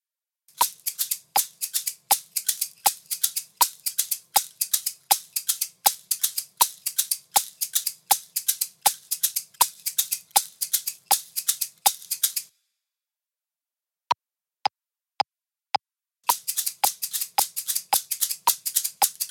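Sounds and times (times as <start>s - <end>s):
shakers: 0.5s - 12.5s, 16.2s - 19.2s.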